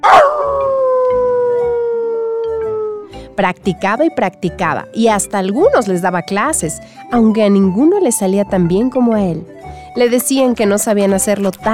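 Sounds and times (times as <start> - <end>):
dog howling: 0.0 - 3.0
speech: 3.4 - 11.7.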